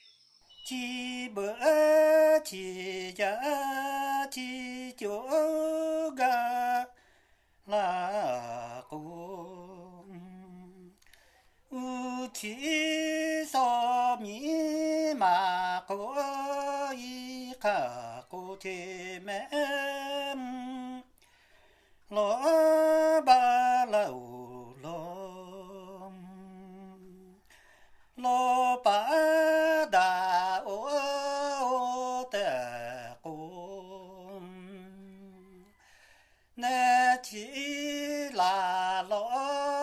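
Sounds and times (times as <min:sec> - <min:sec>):
Lahu man singing a song: 0:00.5 - 0:07.0, 0:07.6 - 0:11.1, 0:11.7 - 0:21.2, 0:22.0 - 0:35.8, 0:36.6 - 0:39.8.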